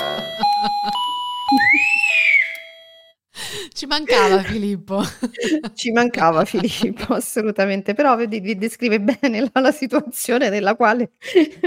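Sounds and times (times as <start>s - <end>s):
electronic doorbell chime: 0.0s - 3.2s
speech: 0.6s - 1.0s, 3.8s - 11.6s
laughter: 4.1s - 7.2s.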